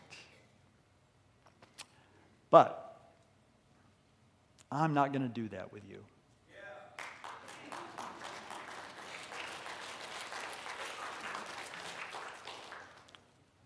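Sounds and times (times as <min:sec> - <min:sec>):
speech: 0:02.5 - 0:02.8, 0:04.7 - 0:06.2
audience clapping: 0:06.9 - 0:13.4.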